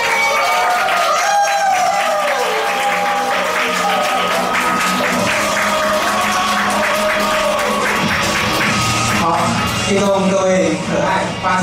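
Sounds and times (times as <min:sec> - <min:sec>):
audience cheers and whoops: 0:00.0 - 0:08.6
large audience applause at a training seminar: 0:00.0 - 0:10.0
speech: 0:09.9 - 0:11.6.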